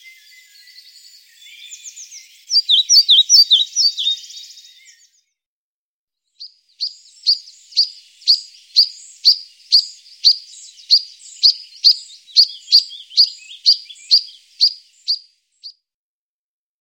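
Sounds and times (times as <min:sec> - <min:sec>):
European pied flycatcher calling: 0:00.0 - 0:05.2, 0:06.4 - 0:15.8.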